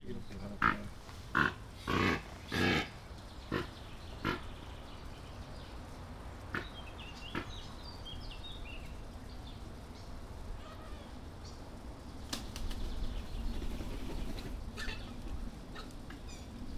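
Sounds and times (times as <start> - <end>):
sacred ibis calls: 0.0 - 9.0, 12.9 - 16.6
great white pelican calls: 0.6 - 4.5, 6.5 - 7.5.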